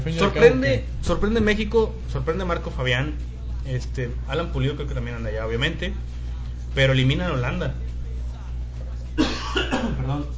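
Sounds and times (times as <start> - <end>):
steady low hum: 0.0 - 10.3
speech: 0.1 - 6.2, 6.8 - 7.9, 9.2 - 10.3
harsh coughs: 9.2 - 10.1.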